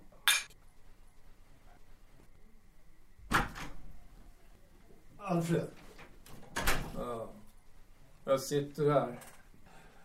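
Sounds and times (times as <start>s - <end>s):
glasses clinking in a toast: 0.2s - 0.6s
speech: 5.3s - 5.8s, 8.2s - 9.3s.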